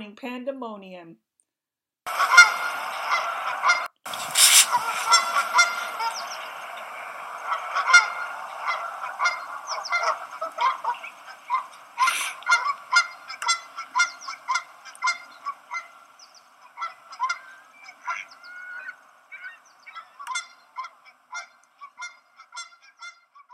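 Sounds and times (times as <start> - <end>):
speech: 0.1 - 1.3
Canada geese honking: 2.1 - 23.5.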